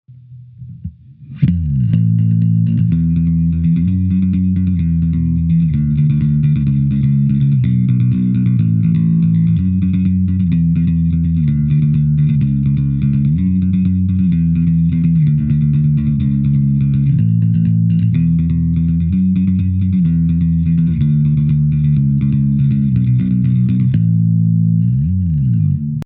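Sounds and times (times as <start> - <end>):
rock bass guitar: 0.1 - 26.0.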